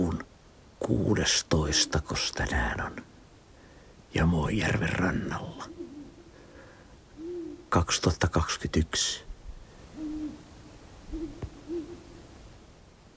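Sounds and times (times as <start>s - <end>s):
speech: 0.9s - 3.1s, 4.1s - 5.8s, 7.7s - 9.3s
two owls hooting on a lake shore: 4.7s - 8.4s, 9.8s - 12.3s.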